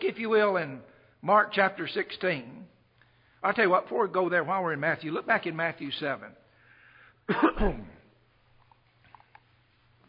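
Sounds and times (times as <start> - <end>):
quiet hum: 0.0 - 10.0
speech: 0.1 - 2.7, 3.4 - 6.4, 7.3 - 8.0
harsh throat-clearing cough from a preacher during a church sermon: 7.3 - 8.1.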